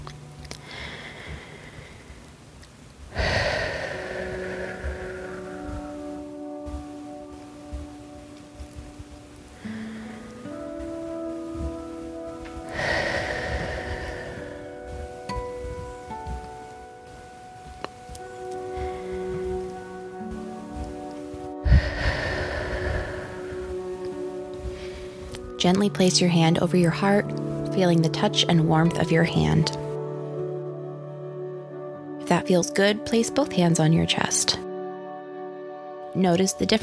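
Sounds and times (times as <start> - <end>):
soft sustained tonal music: 0.0 - 36.8
slow deep breaths during a guided relaxation exercise: 0.5 - 2.4, 3.1 - 7.4, 9.4 - 16.5, 18.6 - 25.6
speech: 25.6 - 29.8, 32.5 - 34.6, 36.2 - 36.8.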